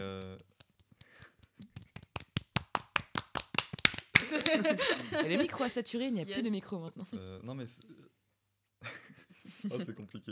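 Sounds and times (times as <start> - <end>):
applause of sharp hand claps: 0.0 - 5.6
laughter: 4.2 - 5.8, 8.8 - 10.3
speech: 4.5 - 8.0, 9.6 - 10.3.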